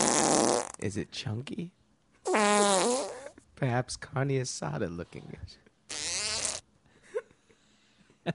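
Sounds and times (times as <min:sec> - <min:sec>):
loud buzzy fart sound effect: 0:00.0 - 0:00.8, 0:02.2 - 0:03.3, 0:05.9 - 0:06.6
speech: 0:00.8 - 0:01.8, 0:03.6 - 0:05.7.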